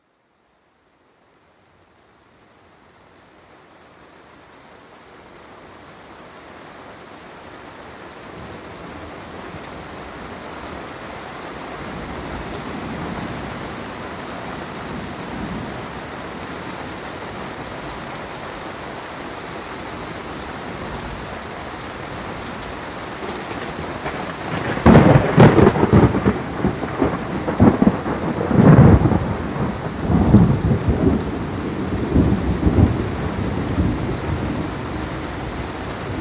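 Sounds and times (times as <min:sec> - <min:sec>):
storm soundscape: 0:23.2 - 0:36.1.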